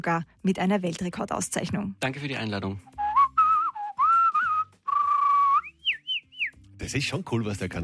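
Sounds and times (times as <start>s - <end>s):
speech: 0.0s - 3.0s, 6.8s - 7.8s
person whistling a lively tune: 2.9s - 6.6s.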